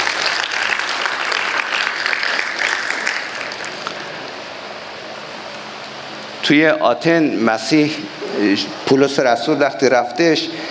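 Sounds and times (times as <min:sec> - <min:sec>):
large crowd applauding: 0:00.0 - 0:04.0
speech: 0:06.5 - 0:10.6.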